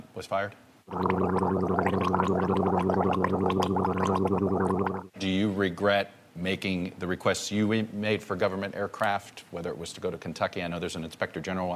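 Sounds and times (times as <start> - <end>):
speech: 0.2 - 11.7
gargling sounds dubbed over a man talking: 0.9 - 5.1.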